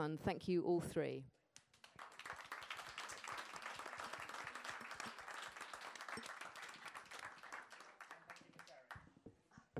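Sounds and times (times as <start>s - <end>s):
speech: 0.0s - 1.4s
audience at a panel discussion applauding: 1.8s - 9.0s.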